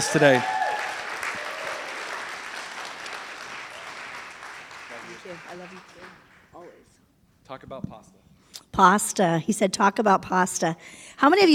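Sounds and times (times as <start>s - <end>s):
speech: 0.0s - 0.6s, 7.6s - 8.2s, 8.8s - 11.5s
audience applause: 0.0s - 6.7s.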